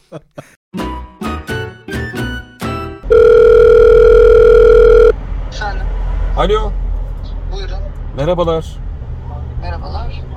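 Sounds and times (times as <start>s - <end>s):
speech: 0.1s - 0.9s, 6.4s - 6.8s, 8.2s - 8.8s
quick separate electronic telephone tones: 3.1s - 5.1s.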